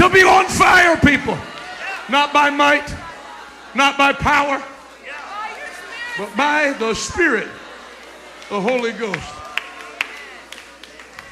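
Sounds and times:
speech: 0.1 - 3.1, 3.7 - 4.7, 6.2 - 7.6, 8.5 - 9.4
laughter: 0.3 - 11.3
audience hand clapping in a large room: 8.0 - 11.3.

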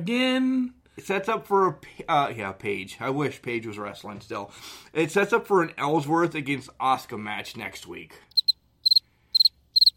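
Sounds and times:
speech: 0.0 - 8.3
cricket chirping: 8.3 - 9.9.

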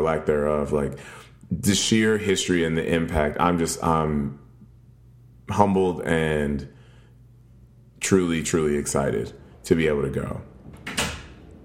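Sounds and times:
speech: 0.0 - 4.4, 5.5 - 6.8, 8.0 - 10.5
AC unit humming: 0.0 - 11.6
door swinging shut with a soft thud and rattle: 10.6 - 11.4.

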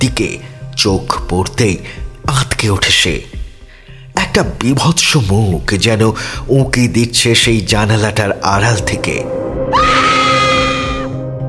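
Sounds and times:
speech: 0.0 - 3.4, 4.2 - 10.0
low droning music bed: 0.0 - 11.4
woman screaming in terror on waking: 9.7 - 11.2.

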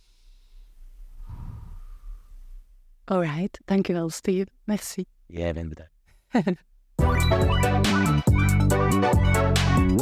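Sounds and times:
slow deep breathing in and out: 0.0 - 2.7
speech: 3.1 - 9.2, 9.8 - 10.0.

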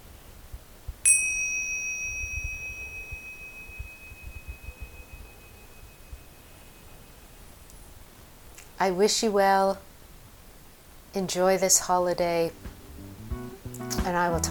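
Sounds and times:
meditation bell ringing in a quiet room: 1.1 - 7.6
speech: 8.8 - 9.9, 11.1 - 12.7, 14.0 - 14.4.

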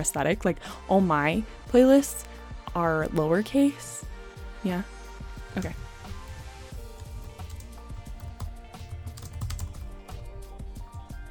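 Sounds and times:
speech: 0.0 - 4.0, 4.6 - 4.9, 5.5 - 5.8
rapid uneven typing on a computer keyboard: 7.4 - 9.8.

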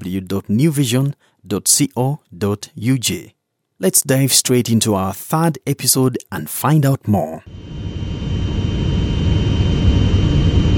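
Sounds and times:
speech: 0.1 - 7.9
airliner jet engine roaring in flight: 7.5 - 10.7.

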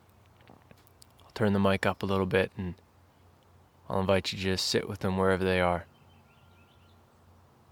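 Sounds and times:
faint birdsong outdoors: 0.0 - 7.7
speech: 1.4 - 2.8, 3.9 - 5.9.

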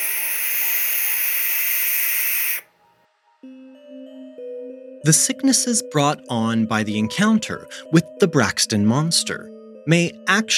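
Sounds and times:
barn owl screeching: 0.0 - 2.7
speech: 5.0 - 10.5.

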